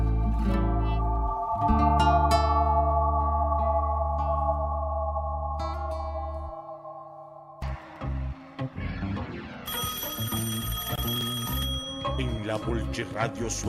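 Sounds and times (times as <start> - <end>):
high sustained ringing tone: 0.1 - 8.5
electronic telephone-style ringing tone: 9.7 - 12.2
speech: 13.0 - 13.6.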